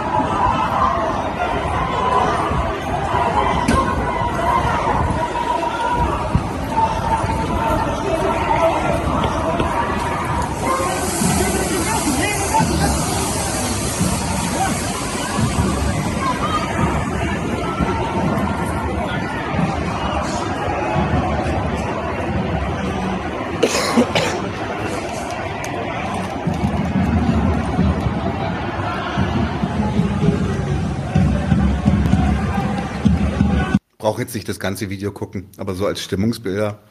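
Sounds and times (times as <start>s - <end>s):
large protest crowd shouting and babbling: 0.0s - 33.9s
rushing hiss: 10.3s - 16.2s
speech: 34.2s - 36.8s.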